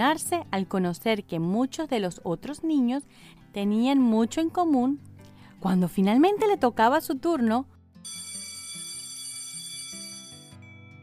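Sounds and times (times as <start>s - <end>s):
speech: 0.0s - 8.2s
school recess bell ringing: 8.1s - 10.6s.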